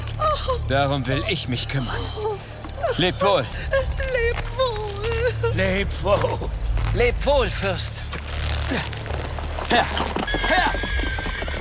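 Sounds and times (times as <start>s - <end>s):
low rumbling: 0.0s - 10.9s
speech: 0.7s - 4.2s, 5.6s - 8.1s, 8.7s - 8.9s, 9.7s - 10.8s
horse neighing: 9.4s - 11.5s.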